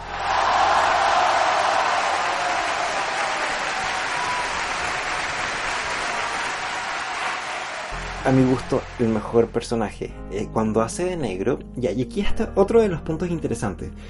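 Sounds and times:
steady dense crowd applause: 0.0s - 9.6s
speech: 8.2s - 14.0s.

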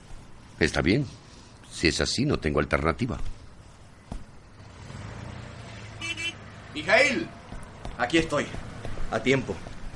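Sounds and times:
speech: 0.6s - 3.4s, 6.8s - 7.4s, 8.0s - 9.7s
car pulling up with low engine rumble: 3.3s - 9.9s
car horn honk: 5.6s - 6.5s.

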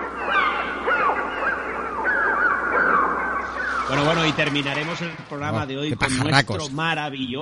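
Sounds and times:
eerie bird cries and squawks from a film: 0.0s - 4.3s
speech: 4.0s - 7.3s.

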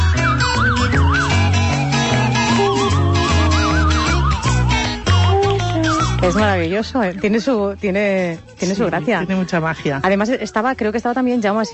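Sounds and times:
warbling siren-like sliding tones in experimental music: 0.0s - 5.0s
steady low bass: 0.0s - 7.4s
speech: 6.2s - 11.7s.

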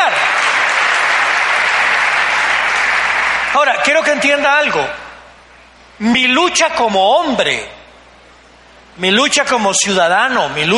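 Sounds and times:
crowd applauding loudly: 0.0s - 3.9s
speech: 3.6s - 5.0s, 6.0s - 7.8s, 9.0s - 10.7s.

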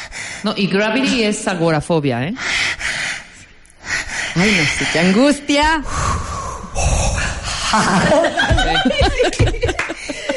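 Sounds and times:
speech: 0.4s - 2.5s, 4.4s - 6.0s, 7.7s - 10.0s
person imitating heavy anxious breathing: 2.4s - 8.1s
laughter: 7.6s - 10.3s.

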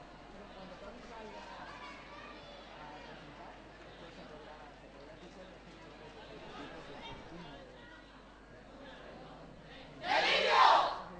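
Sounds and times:
group shouting a battle cry in a large indoor hall: 10.0s - 11.0s.

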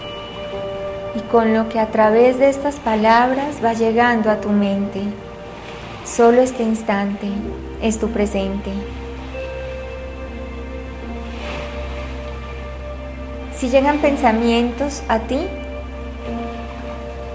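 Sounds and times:
low sustained drone: 0.0s - 17.3s
running water flowing softly: 0.0s - 17.3s
speech: 1.2s - 5.2s, 6.1s - 9.0s, 13.6s - 15.6s.

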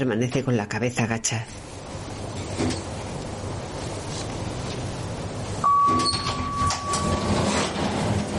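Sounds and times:
speech: 0.0s - 1.7s, 2.6s - 2.9s
mechanical hum of an elevator descending: 1.7s - 8.3s
sustained electronic elevator chime tone: 5.6s - 7.6s
elevator clunk arriving at street level: 5.6s - 8.3s.

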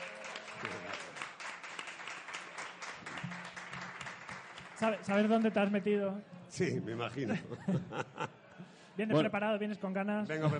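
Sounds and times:
applause from a small group: 0.0s - 6.0s
speech: 4.8s - 8.3s, 9.0s - 10.5s
laughter: 7.0s - 8.7s.

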